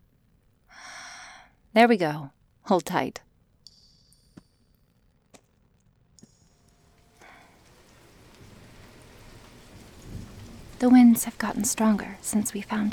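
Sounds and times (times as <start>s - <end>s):
speech: 1.8s - 3.3s, 10.8s - 12.9s
heavy rain pouring down: 6.8s - 12.9s.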